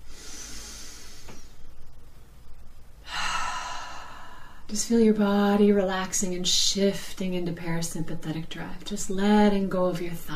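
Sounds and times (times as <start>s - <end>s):
person breathing slowly in a breathing exercise: 0.0s - 1.7s, 3.0s - 4.7s
speech: 4.7s - 10.3s.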